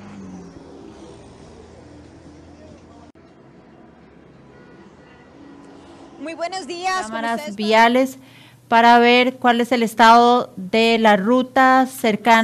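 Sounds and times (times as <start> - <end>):
slow street traffic in the Circunvalación sector: 0.0 - 10.6
speech: 6.2 - 12.4.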